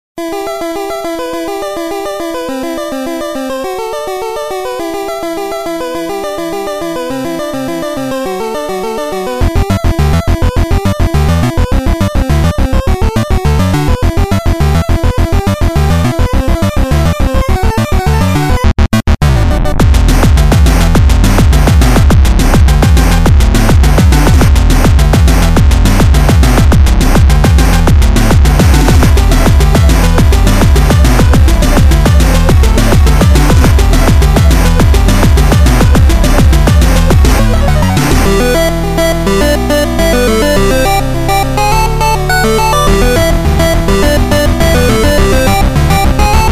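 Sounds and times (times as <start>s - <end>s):
8-bit music: 0.2s - 46.5s.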